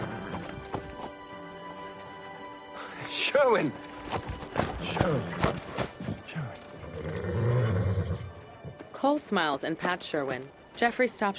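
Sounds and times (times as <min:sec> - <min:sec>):
horse galloping with hooves clip-clopping: 0:00.0 - 0:02.4, 0:03.0 - 0:09.1
speech: 0:03.2 - 0:05.7, 0:09.0 - 0:11.3.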